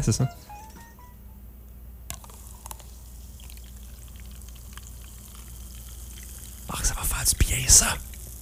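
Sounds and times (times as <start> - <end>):
speech: 0.0 - 0.6, 7.7 - 8.0
fizzy drink poured into a glass: 2.1 - 8.4.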